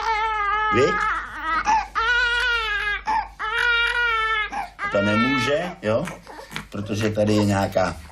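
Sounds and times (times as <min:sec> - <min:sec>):
infant girl crying in loud sustained wails: 0:00.0 - 0:07.8
speech: 0:00.7 - 0:01.2, 0:04.9 - 0:08.1
infant gasping breaths: 0:01.5 - 0:02.1, 0:04.5 - 0:04.8, 0:06.1 - 0:08.1.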